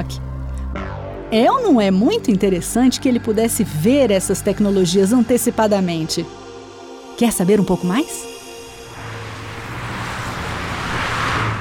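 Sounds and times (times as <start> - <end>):
speech: 0.0 - 0.3, 1.3 - 6.4, 7.2 - 8.3
traffic noise from many engine-driven cars driving along boulevards: 8.5 - 11.5.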